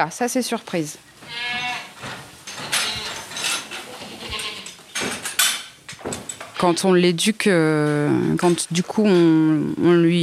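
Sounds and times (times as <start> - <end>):
speech: 0.0 - 2.2, 6.6 - 10.2
rustling as the goat moves around: 0.6 - 8.0
goat bleating in response to its name: 1.2 - 2.0, 2.7 - 4.8.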